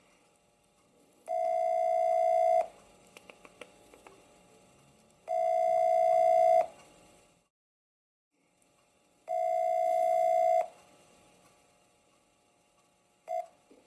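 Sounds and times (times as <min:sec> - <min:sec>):
outgoing phone call ringing tone: 0:01.3 - 0:02.8, 0:05.3 - 0:06.8, 0:09.3 - 0:10.7, 0:13.3 - 0:13.6.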